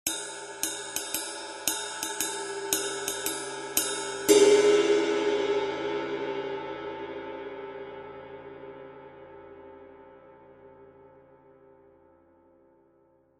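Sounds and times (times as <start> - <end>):
20in custom ride cymbal: 0.1 - 6.0.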